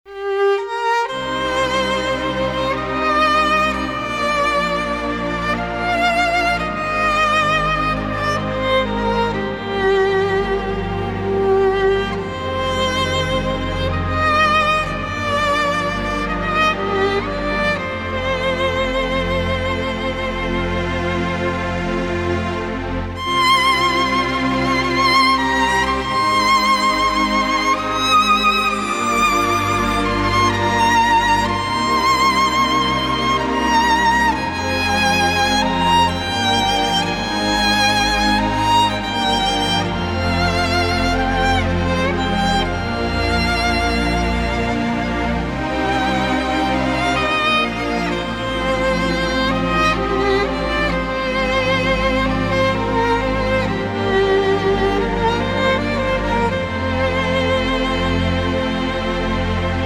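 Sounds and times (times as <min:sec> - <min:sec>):
violin playing: 0:00.0 - 0:59.8.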